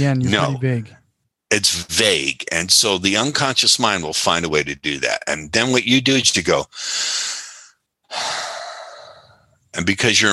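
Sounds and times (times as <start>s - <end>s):
speech: 0.0s - 7.4s, 9.8s - 10.3s
deep breath drawn in and let out: 6.7s - 9.5s.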